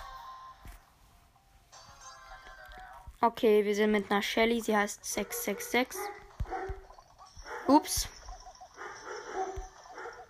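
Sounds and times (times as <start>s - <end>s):
steady hum: 0.0s - 10.2s
speech: 3.2s - 6.2s, 7.7s - 8.2s
dogs barking downstairs: 5.1s - 7.8s, 8.8s - 10.2s.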